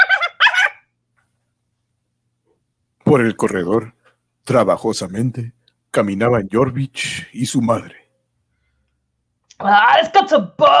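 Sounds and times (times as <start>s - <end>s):
dog yapping barks: 0.0s - 0.9s
speech: 3.1s - 8.0s, 9.6s - 10.7s.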